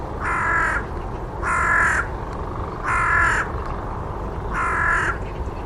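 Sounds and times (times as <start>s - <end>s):
bird giving harsh cawing calls: 0.2s - 2.2s, 2.7s - 3.6s, 4.5s - 5.6s.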